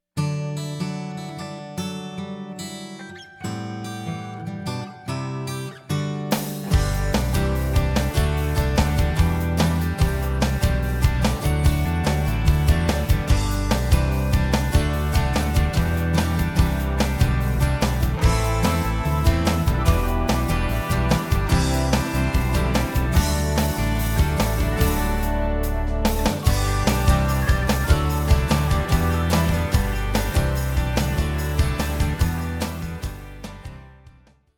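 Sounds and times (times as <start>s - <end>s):
feel-good instrumental rock music: 0.6s - 34.4s.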